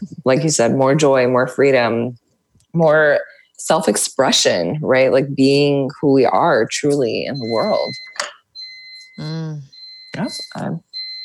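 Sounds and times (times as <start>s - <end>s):
speech: 0.0s - 2.2s, 2.8s - 8.4s, 9.2s - 10.9s
fire alarm high electronic tone: 7.3s - 11.2s.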